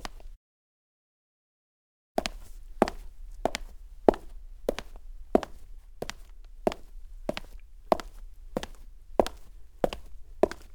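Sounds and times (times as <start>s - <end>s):
foley footsteps on clean cement: 2.2s - 10.7s.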